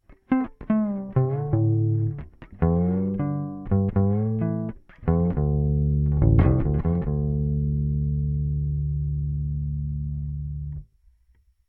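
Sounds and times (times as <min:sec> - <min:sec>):
bass slide: 0:01.0 - 0:10.9.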